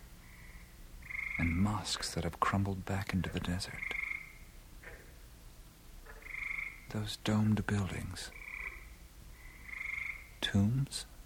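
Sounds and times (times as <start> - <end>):
frogs croaking in a marsh: 0.0 - 2.3, 3.0 - 5.3, 6.0 - 10.9
low murky rumble: 0.0 - 11.2
speech: 1.4 - 4.0, 6.9 - 8.4, 10.5 - 11.1.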